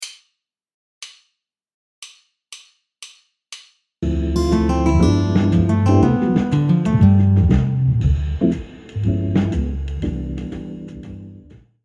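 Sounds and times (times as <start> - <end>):
jazz guitar arpeggio of a ii V7 I progression in C major: 4.0 - 8.1, 9.1 - 9.8.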